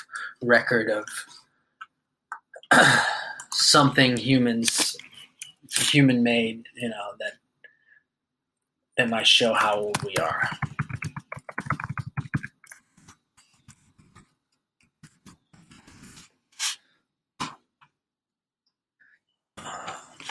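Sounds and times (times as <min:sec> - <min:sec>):
speech: 0:00.4 - 0:01.4, 0:03.7 - 0:05.0, 0:05.7 - 0:07.4, 0:09.0 - 0:10.6
typing on a computer keyboard: 0:09.8 - 0:14.2.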